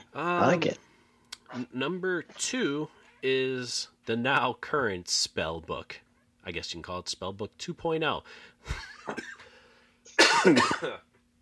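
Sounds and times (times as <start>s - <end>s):
speech: 0.2s - 0.9s, 1.5s - 9.4s, 10.4s - 11.1s
person coughing: 8.8s - 9.5s, 10.1s - 11.1s.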